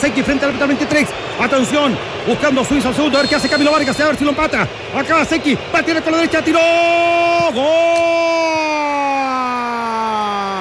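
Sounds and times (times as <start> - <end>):
speech: 0.0 - 8.6
faint crowd noise: 0.0 - 10.6
single voice shouting goal after a penalty kick: 6.9 - 10.6.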